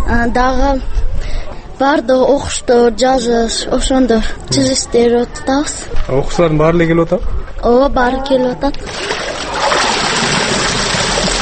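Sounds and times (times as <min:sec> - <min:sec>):
speech: 0:00.1 - 0:01.0, 0:01.8 - 0:09.5
water sloshing and splashing as a woman of nearly seventy washes laundry by hand: 0:08.8 - 0:11.3.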